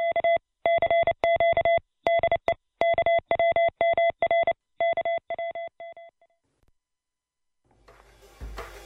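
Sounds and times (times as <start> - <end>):
mid-pitched Morse code tone beeping: 0.0 - 6.1.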